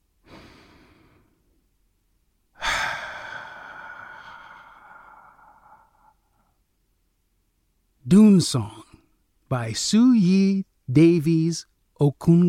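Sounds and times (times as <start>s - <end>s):
deep breath with sighing exhale: 0.2s - 1.5s, 2.6s - 6.6s
speech: 8.1s - 8.8s, 9.5s - 12.4s.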